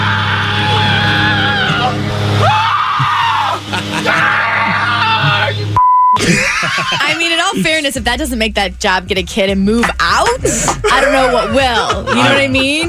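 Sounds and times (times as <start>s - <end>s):
man screaming and groaning in anguished wails: 0.0s - 5.7s
laughter: 3.4s - 8.0s, 10.1s - 12.8s
brief electronic bleep: 5.8s - 6.2s
speech: 7.8s - 12.8s.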